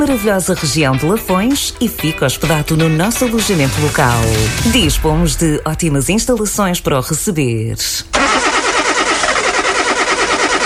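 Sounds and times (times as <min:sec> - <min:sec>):
speech: 0:00.0 - 0:08.4
car engine cranking without catching: 0:08.1 - 0:10.6.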